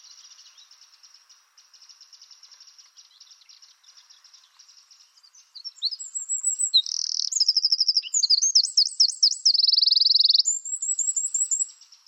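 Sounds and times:
Eurasian wren Troglodytes troglodytes singing: 0:00.0 - 0:12.0.

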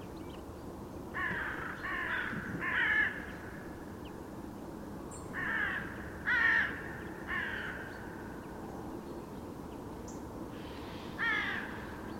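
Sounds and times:
Corvus corone carrion crow raspy cawing: 0:01.1 - 0:03.6, 0:05.3 - 0:08.1, 0:10.6 - 0:12.0.

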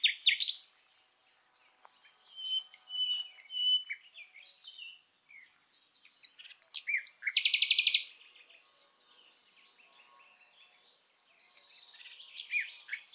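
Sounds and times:
common nightingale singing: 0:00.0 - 0:13.1.

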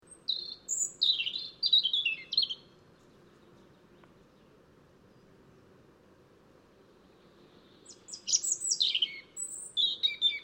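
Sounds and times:
European robin Erithacus rubecula singing: 0:00.0 - 0:05.4, 0:06.9 - 0:10.4
faint low hum: 0:02.6 - 0:08.2.

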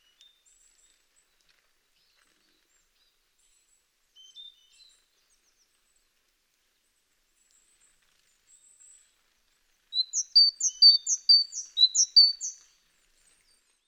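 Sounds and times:
Parus major great tit song: 0:10.0 - 0:12.7.

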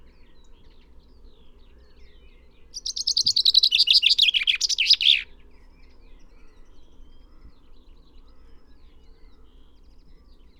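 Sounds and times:
common chaffinch Fringilla coelebs singing: 0:02.8 - 0:05.3.

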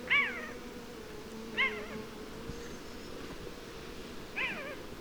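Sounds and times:
Eurasian jay Garrulus glandarius mewing calls: 0:00.1 - 0:00.6, 0:01.5 - 0:02.1, 0:04.3 - 0:04.9.

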